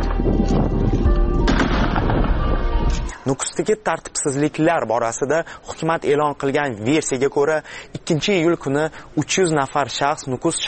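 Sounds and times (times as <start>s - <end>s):
dense continuous rough noise: 0.0s - 3.2s
warning shots fired into the air by soldiers: 1.4s - 2.5s
speech: 3.2s - 10.6s.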